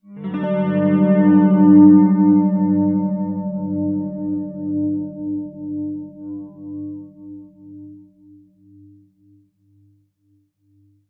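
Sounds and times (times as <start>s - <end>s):
world pop guitar effects: 0.0s - 8.1s.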